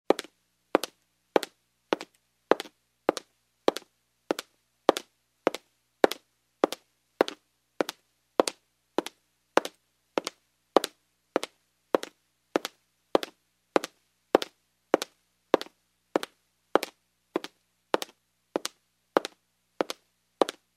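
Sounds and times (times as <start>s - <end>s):
footsteps in heels on a wood floor: 0.1s - 20.6s.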